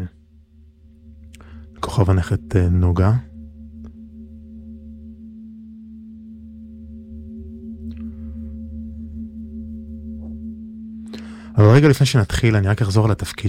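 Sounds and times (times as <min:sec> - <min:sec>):
Tibetan singing bowl ringing: 0:00.0 - 0:13.4
speech: 0:02.0 - 0:03.3, 0:11.6 - 0:13.4.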